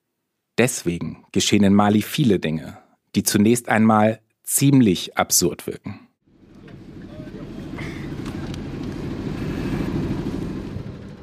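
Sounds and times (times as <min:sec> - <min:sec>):
speech: 0:00.6 - 0:06.1
military vehicle engine rumbling in Mali: 0:06.3 - 0:11.2
road noise of military vehicle driving in Mali: 0:06.3 - 0:11.2.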